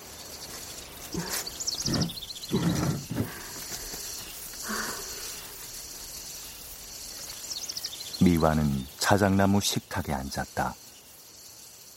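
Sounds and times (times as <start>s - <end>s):
louder rustling gusts of wind: 0.0s - 9.4s
gentle breathy wind: 0.0s - 11.9s
steady evening cicada buzz: 0.0s - 11.9s
high thin bird chirps: 0.2s - 11.6s
speech: 8.4s - 10.8s.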